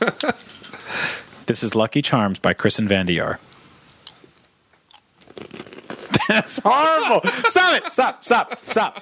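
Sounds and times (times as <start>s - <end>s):
speech: 0.0s - 0.6s, 1.5s - 3.5s, 6.3s - 9.0s
woman chewing crunchy cereal wetly: 4.9s - 6.2s
laughter: 6.1s - 9.0s.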